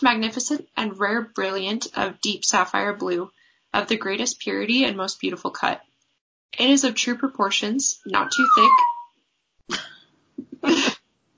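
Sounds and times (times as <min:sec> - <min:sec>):
speech: 0:00.0 - 0:05.9, 0:06.5 - 0:08.9, 0:09.7 - 0:10.9
puppy yipping in a studio: 0:08.1 - 0:09.1.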